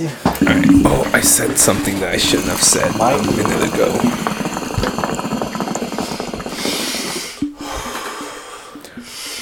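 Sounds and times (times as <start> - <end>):
speech: 0.0 - 5.0
short gurgling pulses of a hookah: 0.3 - 7.8
long steady inhale through a hookah with crackling bubbling: 0.4 - 9.4.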